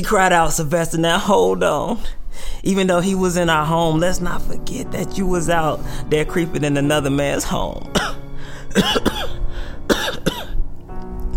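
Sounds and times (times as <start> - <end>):
speech: 0.0 - 9.4
person coughing: 7.9 - 10.6.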